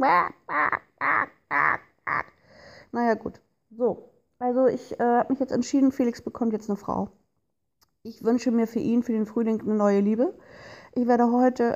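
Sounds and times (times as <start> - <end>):
speech: 0.0 - 1.3, 2.9 - 7.2, 8.0 - 11.7
voice imitating duck quacks: 0.0 - 2.4.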